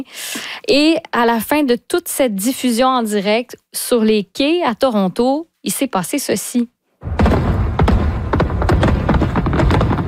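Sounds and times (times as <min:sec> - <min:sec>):
speech: 0:00.0 - 0:07.2
fireworks bangs and crackling over the Toronto waterfront at midnight: 0:07.0 - 0:10.0.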